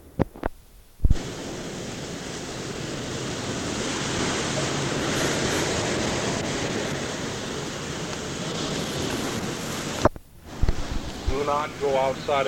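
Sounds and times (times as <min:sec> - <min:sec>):
hurricane-force wind roaring against a solid concrete house in Guam: 0:00.0 - 0:12.4
speech: 0:11.4 - 0:12.4.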